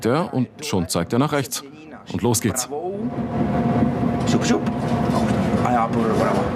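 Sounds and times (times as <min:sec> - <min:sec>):
speech: 0:00.0 - 0:06.5
tram electric motor droning hum: 0:01.3 - 0:06.5
tram wheels rolling in drizzling rain: 0:03.1 - 0:06.5.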